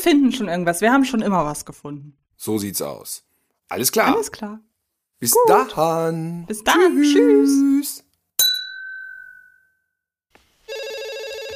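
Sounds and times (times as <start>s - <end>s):
speech: 0.0s - 8.1s
bright bell-like ding: 8.4s - 9.8s
electronic telephone ringtone: 10.7s - 11.5s.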